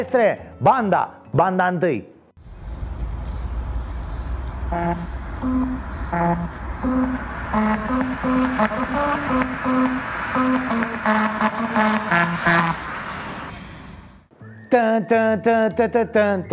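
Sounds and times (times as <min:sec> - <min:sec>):
speech: 0:00.0 - 0:02.1, 0:04.7 - 0:12.9, 0:14.7 - 0:16.5
steady low road rumble: 0:02.4 - 0:14.3
tires humming a melody on musical rumble strips: 0:02.4 - 0:14.6.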